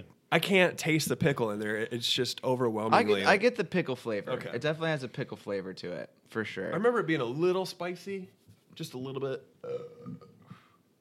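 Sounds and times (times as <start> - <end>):
speech: 0.3 - 10.3
low guttural burp: 9.6 - 10.6.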